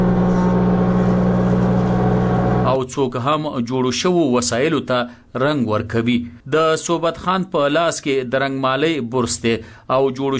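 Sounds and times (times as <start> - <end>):
woodworking machines cutting and levelling wood in a furniture workshop: 0.0 - 2.8
speech: 2.8 - 10.3.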